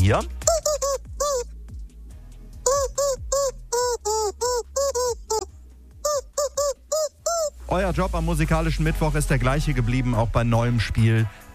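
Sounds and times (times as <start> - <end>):
faint backing track of steady bass notes: 0.0 - 11.5
speech: 0.1 - 0.4, 7.7 - 11.5
squeaky rubber chicken dog toy squeaking a pop melody: 0.4 - 1.5, 2.6 - 7.6.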